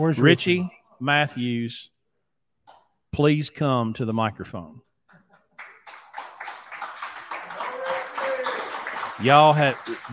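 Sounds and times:
speech: 0:00.0 - 0:01.9, 0:03.1 - 0:04.9, 0:09.2 - 0:10.1
crowd applause: 0:05.5 - 0:10.1.

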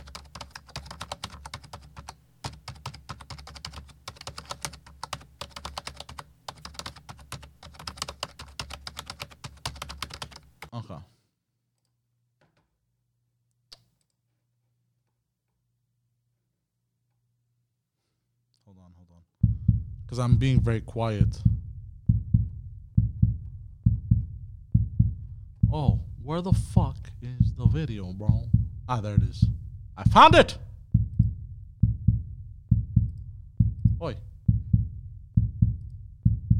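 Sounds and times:
rapid typing on a computer keyboard: 0:00.0 - 0:10.7
speech: 0:10.8 - 0:11.1, 0:20.1 - 0:21.5, 0:26.4 - 0:26.9, 0:27.8 - 0:30.6
low steady hum: 0:19.4 - 0:36.5.

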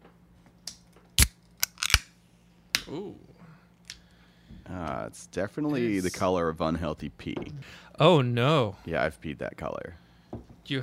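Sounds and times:
package tearing open: 0:01.2 - 0:02.1
speech: 0:02.9 - 0:03.4, 0:04.7 - 0:10.0, 0:10.7 - 0:10.8.

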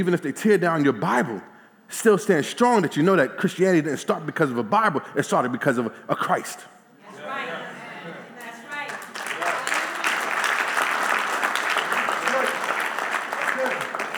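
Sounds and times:
speech: 0:00.0 - 0:06.8
audience applause: 0:08.9 - 0:14.1.

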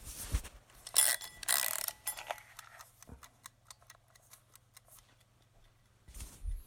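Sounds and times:
mechanical clockwork timer wound by hand, ratcheting clicks: 0:00.8 - 0:06.0.

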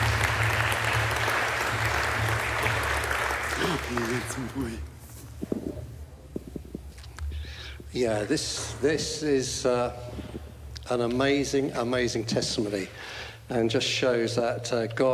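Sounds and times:
crowd applauding: 0:00.0 - 0:04.9
speech: 0:03.9 - 0:04.9, 0:07.9 - 0:10.1, 0:10.9 - 0:15.1.

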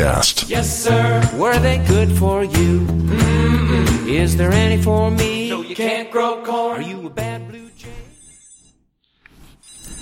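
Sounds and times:
speech: 0:00.1 - 0:07.9
cell phone ringtone: 0:07.6 - 0:08.9.

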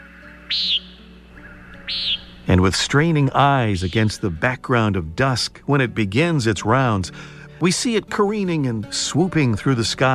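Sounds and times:
Common nighthawk call over city rooftops at dusk: 0:00.0 - 0:04.4
speech: 0:00.5 - 0:00.7, 0:01.9 - 0:10.1.

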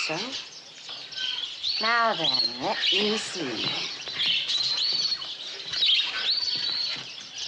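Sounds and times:
speech: 0:00.0 - 0:00.5, 0:01.8 - 0:04.0
caged redbirds also called strawberry finches chirping in a pet shop: 0:00.0 - 0:07.4.

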